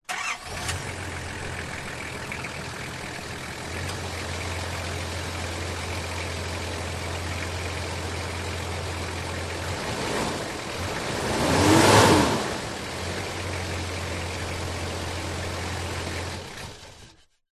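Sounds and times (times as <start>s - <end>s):
Nissan Patrol diesel SUV engine idling and revving off, recorded from front exterior: 0.1s - 17.4s.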